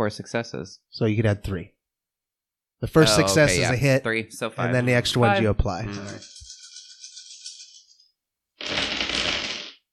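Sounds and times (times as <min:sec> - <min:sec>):
speech: 0:00.0 - 0:01.8, 0:02.8 - 0:06.4
handful of dice rattling and shaking: 0:06.2 - 0:07.9.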